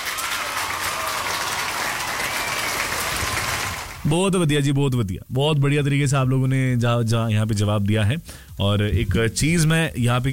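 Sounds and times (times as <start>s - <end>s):
applause for correct quiz answers: 0.0s - 4.1s
speech: 4.0s - 10.3s.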